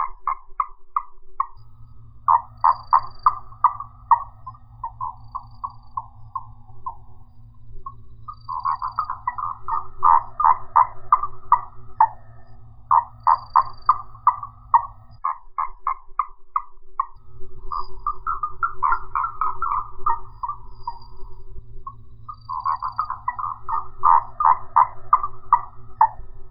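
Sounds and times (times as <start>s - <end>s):
low hum: 1.6s - 15.2s, 17.2s - 26.4s
Gastrotheca ovifera giving rapid series of pulsed notes: 1.6s - 15.4s, 17.2s - 26.4s.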